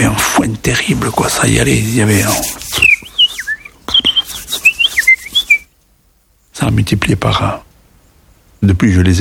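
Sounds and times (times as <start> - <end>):
speech: 0.1 - 2.9, 6.6 - 7.6, 8.6 - 9.1
person whistling chirps imitating sparrows returning into bamboo at nightfall: 2.7 - 5.7.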